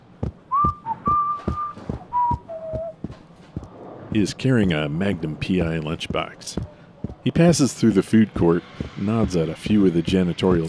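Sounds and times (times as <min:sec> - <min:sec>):
man whistling a bright TV theme tune while walking: 0:00.5 - 0:03.0
speech: 0:04.1 - 0:10.6.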